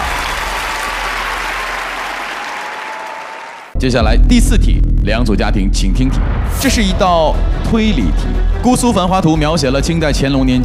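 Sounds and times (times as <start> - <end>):
studio audience applause: 0.0 - 3.8
speech: 3.8 - 10.6.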